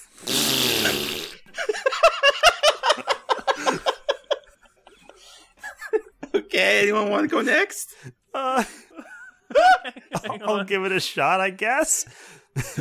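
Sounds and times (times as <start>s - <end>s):
loud buzzy mouth-made fart sound: 0.0s - 1.5s
several people laughing rhythmically: 0.8s - 6.5s, 8.4s - 10.7s, 12.6s - 12.7s
speech: 6.7s - 8.8s, 10.1s - 12.7s.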